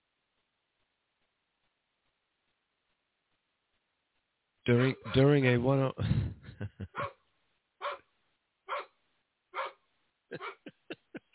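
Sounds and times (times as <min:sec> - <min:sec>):
speech: 0:04.7 - 0:07.2, 0:10.3 - 0:10.6
female dog barking echoing through a PA system: 0:04.8 - 0:05.2, 0:06.9 - 0:07.2, 0:07.8 - 0:08.1, 0:08.7 - 0:09.0, 0:09.6 - 0:09.8, 0:10.4 - 0:10.7
laughter: 0:06.0 - 0:07.0, 0:10.3 - 0:11.3.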